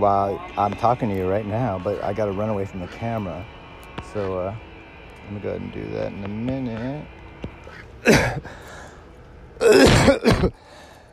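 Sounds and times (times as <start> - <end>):
speech: 0.0 - 4.7, 5.3 - 7.2, 8.0 - 8.8, 9.6 - 10.7
person clearing their throat: 8.0 - 8.5, 9.6 - 10.6
person coughing: 8.0 - 8.5, 9.6 - 10.6.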